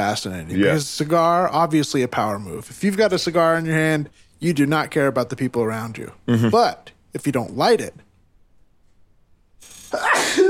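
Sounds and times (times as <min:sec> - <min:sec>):
speech: 0:00.0 - 0:08.0, 0:09.9 - 0:10.1
single loud human sneeze: 0:09.6 - 0:10.4.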